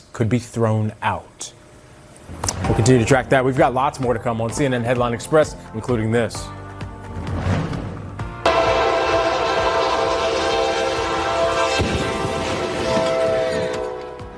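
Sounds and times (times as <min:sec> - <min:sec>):
speech: 0:00.2 - 0:01.6, 0:02.3 - 0:06.6
train horn blaring at a crossing: 0:02.5 - 0:03.6, 0:08.4 - 0:14.3
rumbling train: 0:07.1 - 0:14.3.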